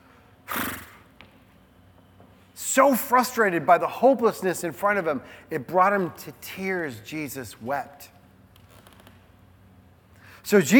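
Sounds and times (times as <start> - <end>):
horse snorting: 0.5 - 1.0
speech: 2.8 - 8.2, 10.5 - 10.7.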